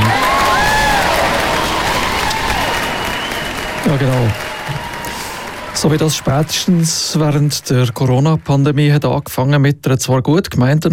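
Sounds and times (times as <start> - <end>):
scattered cheers: 0.0 - 8.1
crowd applauding: 0.0 - 9.3
whistles: 1.6 - 5.6
speech: 3.9 - 4.5, 5.8 - 10.9.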